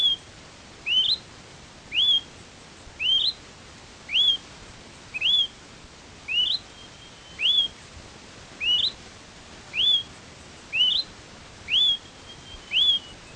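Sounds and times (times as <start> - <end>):
Smoke-colored Pewee Contopus fumigatus zarumae rising whistle: 0.9 - 1.2, 1.9 - 2.3, 3.0 - 3.4, 4.1 - 4.4, 5.2 - 5.5, 6.3 - 7.8, 8.6 - 9.0, 9.7 - 10.1, 10.7 - 11.1, 11.7 - 13.3.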